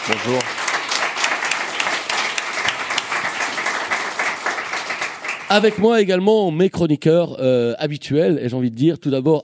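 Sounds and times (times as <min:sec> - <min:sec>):
audience applause with many hands clapping: 0:00.0 - 0:06.0
speech: 0:00.1 - 0:00.7, 0:05.5 - 0:09.4.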